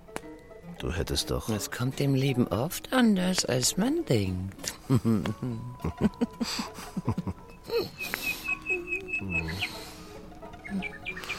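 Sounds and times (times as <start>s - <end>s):
speech: 0.8s - 8.4s, 9.2s - 9.9s, 10.7s - 11.0s
laughter: 4.6s - 8.2s
nightingale singing: 7.4s - 11.3s.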